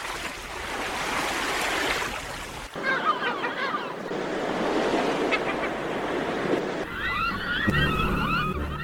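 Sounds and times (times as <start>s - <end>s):
surf of a blue sea breaking at the foot of cliffs: 0.8s - 7.8s
bird calls chirping over the water: 2.7s - 8.8s.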